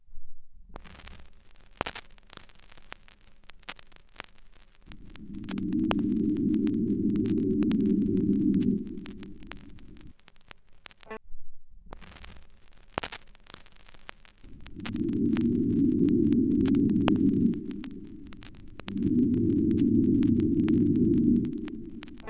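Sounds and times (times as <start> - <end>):
ambient drone: 4.9 - 10.1, 14.4 - 22.2.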